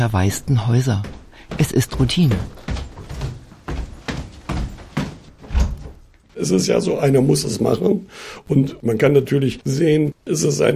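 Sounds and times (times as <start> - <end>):
speech: 0.0 - 2.6, 6.4 - 10.7
bedroom door closed upstairs on the first floor of an empty house: 5.4 - 6.0.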